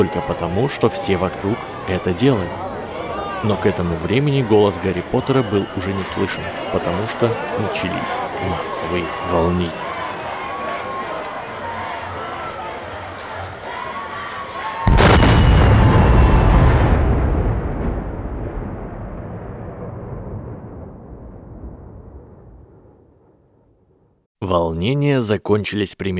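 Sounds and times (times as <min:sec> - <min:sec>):
speech: 0:00.0 - 0:02.7, 0:03.4 - 0:09.9, 0:24.5 - 0:26.1
huge fiery explosion from the tallest tower of a castle: 0:14.9 - 0:24.1
steady rumbling background: 0:14.9 - 0:24.2.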